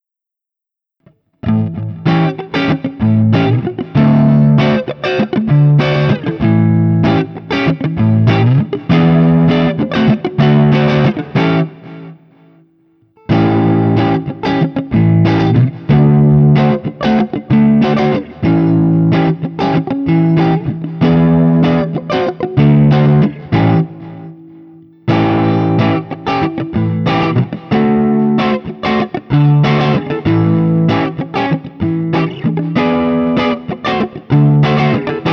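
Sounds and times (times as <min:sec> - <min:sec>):
Guild X92 Citron guitar playing clean 7th chords: 0:01.1 - 0:35.3.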